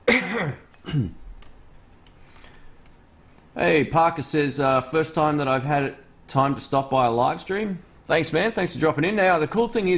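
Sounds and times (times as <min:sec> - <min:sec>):
person coughing throatily: 0:00.0 - 0:01.2
speech: 0:00.4 - 0:01.2, 0:03.6 - 0:09.9.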